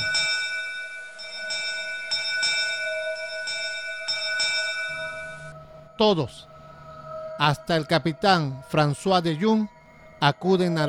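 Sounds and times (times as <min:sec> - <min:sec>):
ship's bell clanging rapidly: 0:00.0 - 0:05.5
speech: 0:06.0 - 0:06.5, 0:07.4 - 0:10.8.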